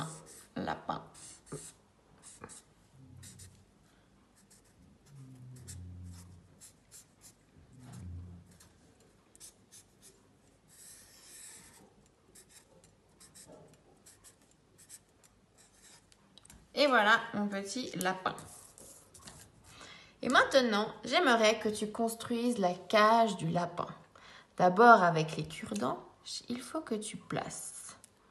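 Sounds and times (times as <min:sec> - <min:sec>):
pen scratching on a sheet of paper: 0:00.0 - 0:03.6, 0:04.4 - 0:07.5, 0:09.3 - 0:16.1
speech: 0:16.8 - 0:18.6, 0:20.3 - 0:24.0, 0:24.6 - 0:27.8.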